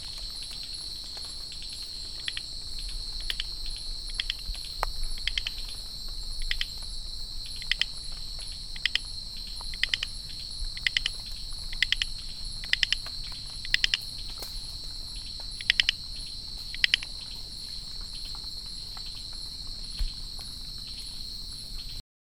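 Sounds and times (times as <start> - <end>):
Microhyla mantheyi chorus frog calling after rain in Singapore: 2.1 - 2.6, 3.2 - 4.5, 5.2 - 5.8, 6.4 - 6.8, 7.6 - 8.0, 8.7 - 9.1, 9.7 - 14.3, 15.6 - 16.0, 16.7 - 17.4.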